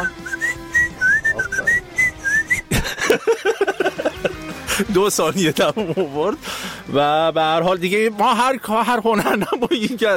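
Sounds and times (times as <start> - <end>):
person whistling a short, wavering tune: 0.0 - 2.7
laughter: 0.9 - 6.4, 9.1 - 10.1
speech: 4.8 - 10.1.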